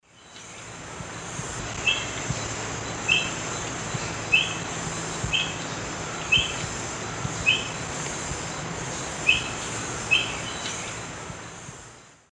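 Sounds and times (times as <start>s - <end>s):
Mitu salvini alarm calls in Eastern Lowlands of South America: 1.4s - 6.7s, 7.3s - 11.0s.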